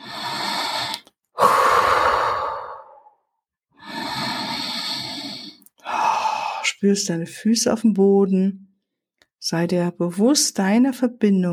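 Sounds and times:
deep breathing in and out during a guided relaxation: 0.0s - 6.8s
speech: 6.8s - 8.7s, 9.4s - 11.5s.

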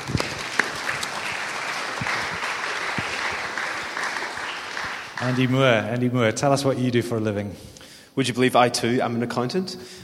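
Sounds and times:
audience applause: 0.0s - 5.8s
speech: 5.2s - 10.0s.

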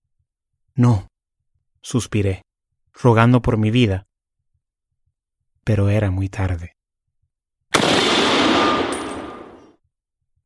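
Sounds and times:
speech: 0.8s - 1.1s, 1.8s - 4.1s, 5.6s - 6.8s
single loud gunshot sound effect: 7.7s - 9.7s.

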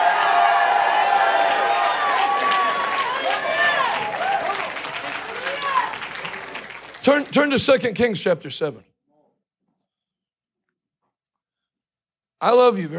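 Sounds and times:
shouts and whoops from a crowd: 0.0s - 6.6s
large crowd at a religious gathering applauding: 0.0s - 8.6s
speech: 7.0s - 8.9s, 12.4s - 12.9s.

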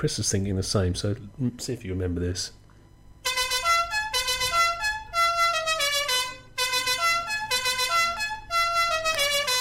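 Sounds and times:
speech: 0.0s - 2.6s
musical goal-celebration horn on small invalid carriage honking a tune: 3.2s - 9.6s.

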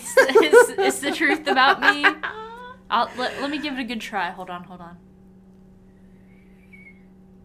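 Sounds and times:
laughter: 0.0s - 3.8s
steady low electrical hum: 0.0s - 7.4s
speech: 0.2s - 2.3s, 2.9s - 5.1s
weak breathy human whistle attempt: 6.6s - 7.0s.

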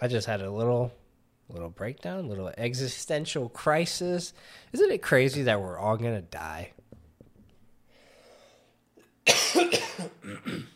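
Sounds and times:
speech: 0.0s - 6.8s, 9.5s - 10.7s
harsh raspy coughing: 9.2s - 10.7s.

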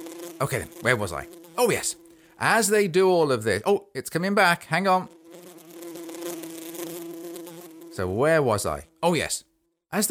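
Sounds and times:
bee buzzing while flying past: 0.0s - 2.8s, 4.8s - 9.2s
speech: 0.4s - 5.2s, 8.0s - 10.0s.

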